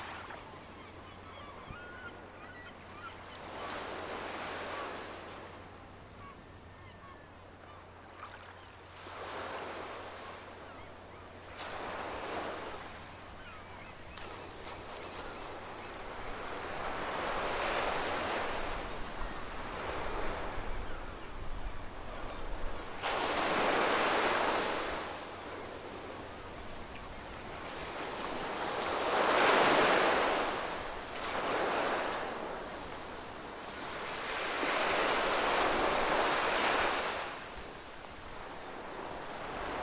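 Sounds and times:
ocean waves breaking on shore: 0.0s - 6.4s, 7.7s - 39.8s.

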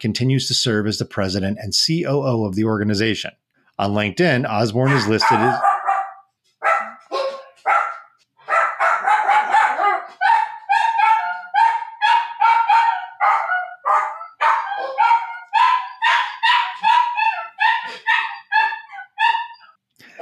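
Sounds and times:
speech: 0.0s - 5.7s
two dogs barking and yapping excitedly: 4.8s - 20.2s.

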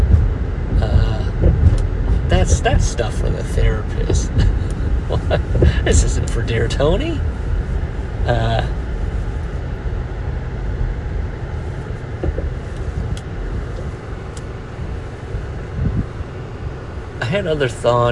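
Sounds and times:
faint brief clicks and thumps: 0.0s - 6.7s, 11.9s - 14.5s
road and engine noise inside a moving car: 0.0s - 18.1s
speech: 2.5s - 7.4s, 8.2s - 8.8s, 17.3s - 18.1s
laughter: 5.1s - 6.0s.

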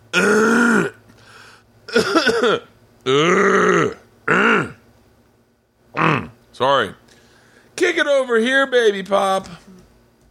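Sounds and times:
person clearing their throat loudly and theatrically: 0.1s - 1.0s, 1.9s - 4.8s, 6.0s - 6.4s
speech: 2.0s - 3.7s, 6.6s - 7.0s, 7.8s - 9.6s.

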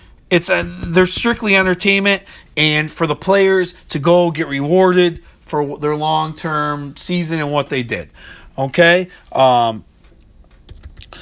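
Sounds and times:
speech: 0.3s - 9.9s
computer keyboard typing: 10.6s - 11.2s.

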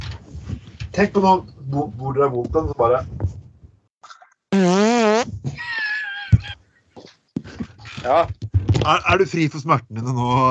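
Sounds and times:
speech: 1.0s - 3.2s, 8.0s - 10.4s
loud long fart: 4.5s - 5.4s.

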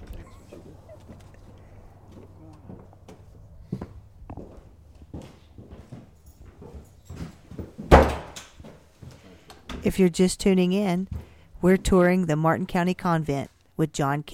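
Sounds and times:
footsteps on a hard floor: 0.9s - 9.5s, 11.0s - 11.4s
speech: 9.9s - 14.3s.

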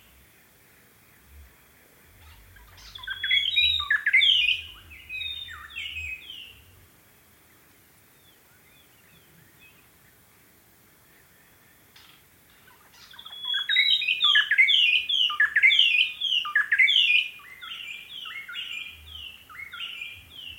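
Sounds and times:
faint low hum or engine drone: 0.0s - 7.6s
white-browed robin chat singing rapid whistled phrases: 2.3s - 6.6s, 12.9s - 18.9s.

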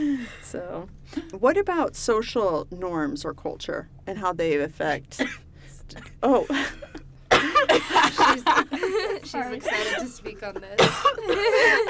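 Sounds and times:
speech: 0.0s - 7.0s, 7.7s - 11.8s
person coughing: 5.2s - 8.6s, 10.7s - 11.8s
laughter: 7.6s - 11.8s.

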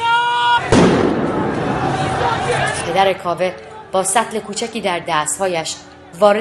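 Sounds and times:
person shouting: 0.0s - 0.7s
gunshot during street protests: 0.7s - 1.6s
speech: 2.9s - 6.3s.

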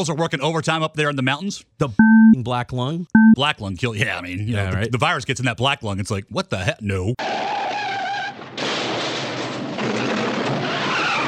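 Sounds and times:
speech: 0.0s - 7.6s
old Porsche sports car tires skidding: 7.2s - 8.5s, 10.0s - 11.2s.

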